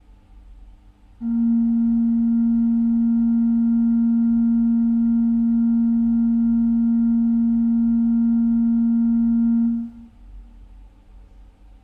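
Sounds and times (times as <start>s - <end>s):
pipe organ quint stop on the Positif: 1.2s - 10.0s.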